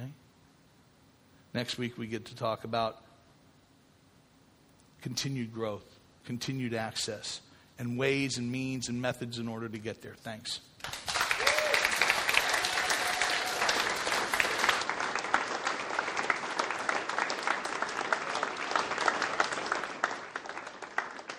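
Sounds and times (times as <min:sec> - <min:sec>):
speech: 0:01.5 - 0:03.1, 0:05.0 - 0:11.1
large audience applauding: 0:10.8 - 0:21.3.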